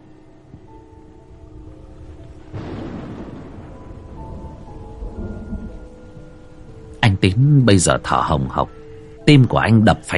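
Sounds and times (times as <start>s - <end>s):
steady rain: 0.0s - 9.6s
low thunder rumble: 1.2s - 6.9s
speech: 7.2s - 10.1s.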